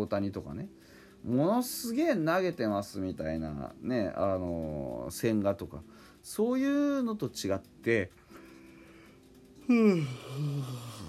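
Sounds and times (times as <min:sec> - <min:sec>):
speech: 0:00.0 - 0:08.2, 0:09.7 - 0:11.0
long drawn-out yawn trailing into a low groan: 0:09.6 - 0:11.0.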